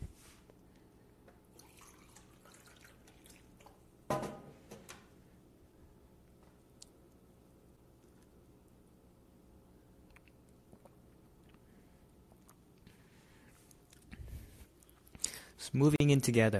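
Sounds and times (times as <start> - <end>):
water running from a tap: 1.6 - 3.5
faint water drips: 1.6 - 3.8
speech: 15.7 - 16.5.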